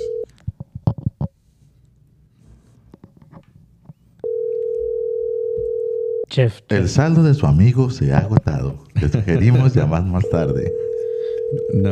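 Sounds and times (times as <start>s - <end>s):
telephone dial tone while a call is placed: 0.0s - 0.3s, 4.2s - 6.3s, 10.2s - 11.8s
speech: 6.4s - 10.8s, 11.5s - 11.9s.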